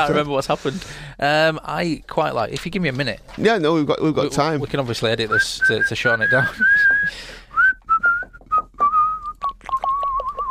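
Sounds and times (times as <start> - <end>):
speech: 0.0 - 7.4
person whistling a bouncy melodic tune: 5.3 - 10.5.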